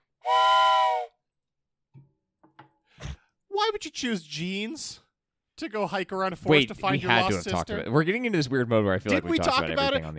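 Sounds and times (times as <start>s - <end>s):
whistle blast: 0.2s - 1.2s
speech: 3.7s - 5.0s, 5.6s - 10.1s.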